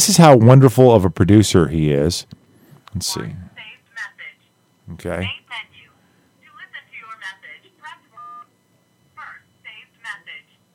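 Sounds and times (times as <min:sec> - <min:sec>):
speech: 0:00.1 - 0:03.5, 0:04.9 - 0:05.7
long steady telephone tone: 0:02.4 - 0:10.7.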